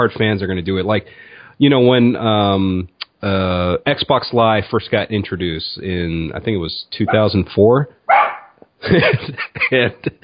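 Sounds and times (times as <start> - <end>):
speech: 0.0 - 10.2
dogs barking: 7.1 - 7.3, 8.1 - 8.6
laughter: 8.8 - 10.2.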